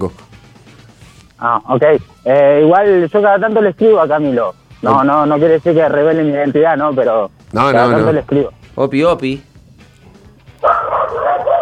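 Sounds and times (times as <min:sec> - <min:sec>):
speech: 0:00.0 - 0:00.2, 0:01.4 - 0:09.5
dog barking: 0:10.6 - 0:11.5.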